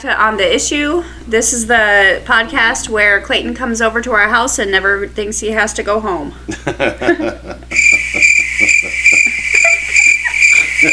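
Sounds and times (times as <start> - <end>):
speech: 0.0 - 8.7
laughter: 6.5 - 10.9
crickets chirping: 7.7 - 10.9.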